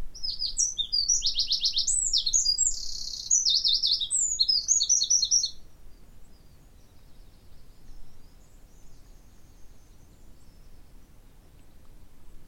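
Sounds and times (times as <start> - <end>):
continuous low noise: 0.0 - 12.4
Eurasian wren Troglodytes troglodytes trills and chattering: 0.2 - 5.6.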